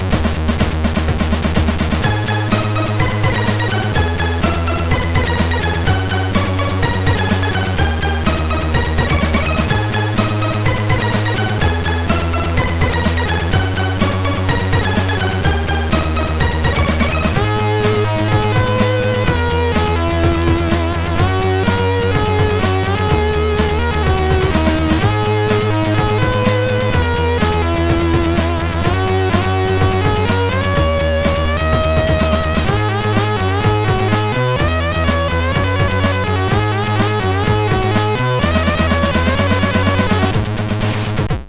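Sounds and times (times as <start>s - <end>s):
chiptune music from a MOS6581R3 sound chip: 0.1s - 41.3s.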